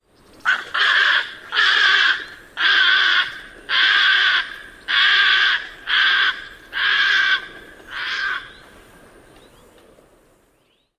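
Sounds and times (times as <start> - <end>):
Little Blue Heron alarm flight calls: 0.4 - 8.6.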